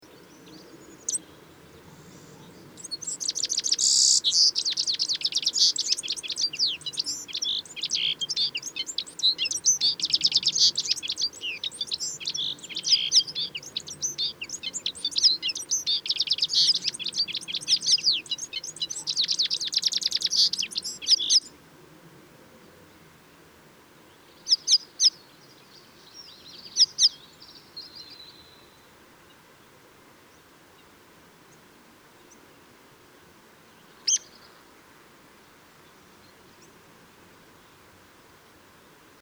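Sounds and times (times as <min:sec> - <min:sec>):
citril finch calling: 0:00.1 - 0:21.5, 0:24.4 - 0:25.3, 0:26.1 - 0:28.6, 0:34.0 - 0:34.6.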